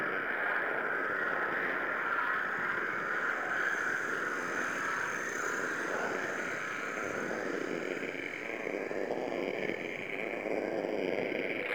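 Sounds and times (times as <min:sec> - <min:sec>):
mountain pass ambience: 0:00.2 - 0:11.6.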